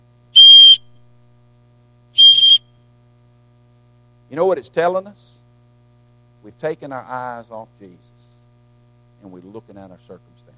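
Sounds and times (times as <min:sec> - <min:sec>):
shrill whistle blasts: 0:00.4 - 0:00.9, 0:02.2 - 0:02.6
speech: 0:04.3 - 0:05.4, 0:06.4 - 0:08.2, 0:09.2 - 0:10.5.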